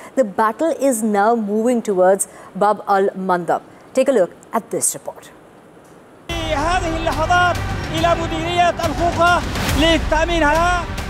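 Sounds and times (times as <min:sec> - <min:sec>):
speech: 0:00.2 - 0:05.4, 0:06.6 - 0:11.0
crowd of fighters chanting in celebration: 0:06.3 - 0:11.0.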